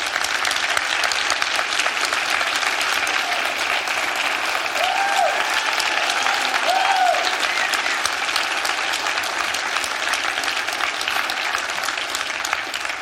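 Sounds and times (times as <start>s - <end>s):
large church audience applauding: 0.0s - 13.0s
brief whoops: 4.8s - 8.0s.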